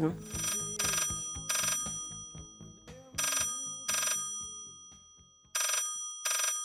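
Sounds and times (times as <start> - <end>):
speech: 0.0 - 0.4
telephone ringing in double-burst pattern: 0.2 - 2.4, 3.2 - 4.7, 5.6 - 6.6.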